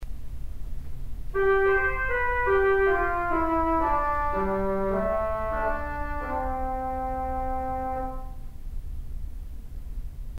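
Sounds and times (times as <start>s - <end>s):
theatre organ tuba stop with tremolo: 1.3s - 8.5s.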